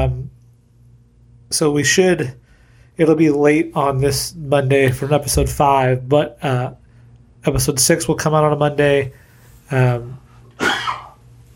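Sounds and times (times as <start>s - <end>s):
speech: 1.5s - 2.4s, 3.0s - 6.8s, 7.4s - 10.8s
person coughing with throaty hack and breathy cough: 10.6s - 11.2s.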